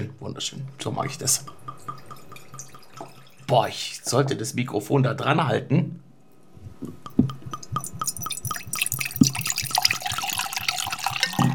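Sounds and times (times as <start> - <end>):
speech: 0.0 - 1.6, 3.5 - 5.9
Auxerrois wine from a freshly opened bottle glugging and splashing into a glass: 1.2 - 3.6, 7.2 - 11.5.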